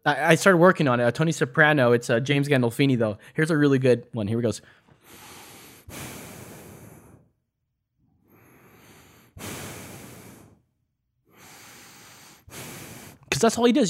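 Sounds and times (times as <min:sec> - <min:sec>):
speech: 0:00.0 - 0:05.2, 0:13.4 - 0:13.8
voice imitating heavy breathing: 0:05.0 - 0:07.4, 0:08.2 - 0:13.7.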